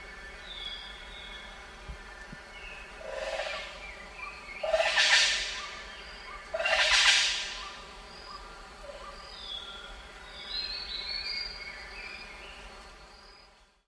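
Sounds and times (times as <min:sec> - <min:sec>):
Robinson's Banded Langur Presbytis robinsoni alarm calls in lowland primary forest in Kedah: 0:04.6 - 0:07.8.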